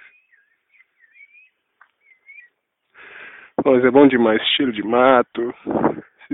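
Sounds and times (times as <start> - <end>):
small bird singing beside a dirt road in the countryside near native forest: 0.0 - 3.0
wind in trees: 0.0 - 6.3
speech: 3.6 - 6.3.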